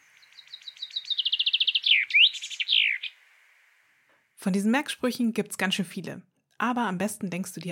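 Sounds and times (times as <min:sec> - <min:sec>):
common chaffinch singing: 0:00.0 - 0:03.8
speech: 0:04.4 - 0:07.6.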